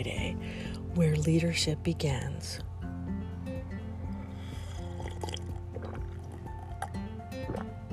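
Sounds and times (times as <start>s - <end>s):
speech: 0.0s - 2.7s
low musical drone: 0.0s - 7.9s
person sipping the first cup of coffee of the day: 4.1s - 7.9s.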